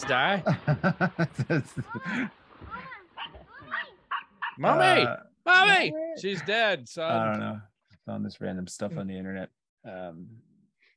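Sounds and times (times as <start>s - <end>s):
laughter: 0.0s - 2.3s
speech: 0.0s - 2.8s, 4.6s - 10.9s
dog barking sharply: 3.2s - 4.6s.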